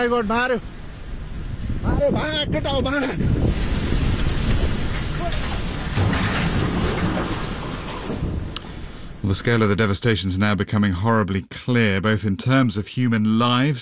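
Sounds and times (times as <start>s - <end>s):
speech: 0.0s - 0.8s, 1.8s - 3.7s, 9.2s - 13.8s
rushing floodwater churning with mud and debris: 0.0s - 9.8s.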